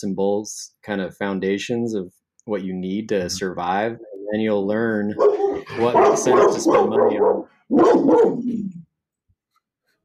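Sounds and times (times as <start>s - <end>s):
speech: 0.0s - 8.8s
dog barking: 5.2s - 8.5s.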